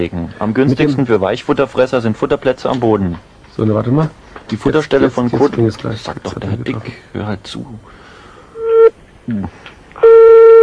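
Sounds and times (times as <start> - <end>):
speech: 0.0 - 8.0, 9.3 - 10.4
telephone busy signal after dialing: 8.6 - 8.9, 10.0 - 10.6.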